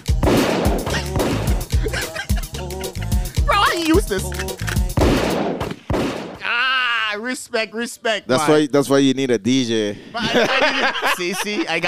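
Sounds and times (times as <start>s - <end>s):
gunshot sound effects: 0.2s - 1.6s, 5.0s - 6.4s
laughter: 0.9s - 3.7s, 9.9s - 11.8s
speech: 4.1s - 4.6s, 7.3s - 11.8s.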